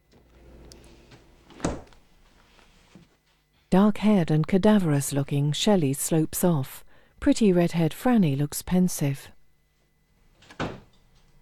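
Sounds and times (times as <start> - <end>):
low steady room hum: 0.0 - 11.4
refrigerator door shutting: 1.5 - 2.0, 10.4 - 11.0
speech: 3.7 - 9.4.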